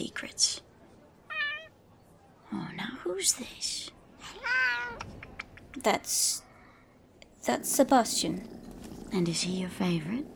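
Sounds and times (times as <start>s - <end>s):
speech: 0.0s - 0.7s, 2.5s - 6.4s, 7.4s - 10.3s
cat meowing: 1.3s - 1.8s, 4.2s - 5.3s.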